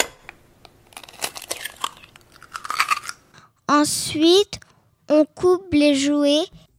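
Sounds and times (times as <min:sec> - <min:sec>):
eggs being cracked for a recipe: 0:00.0 - 0:03.4
speech: 0:03.7 - 0:06.6.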